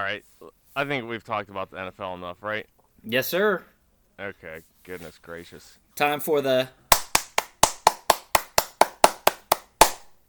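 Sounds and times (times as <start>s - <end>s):
speech: 0.0s - 6.8s
hands clapping in a steady even rhythm: 6.9s - 10.2s.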